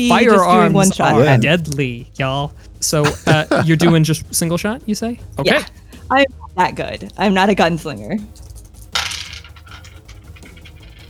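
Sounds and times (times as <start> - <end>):
speech: 0.0 - 8.5
laughter: 0.3 - 1.6, 3.0 - 4.4
dice rolling on a hard table during a game: 8.4 - 11.0.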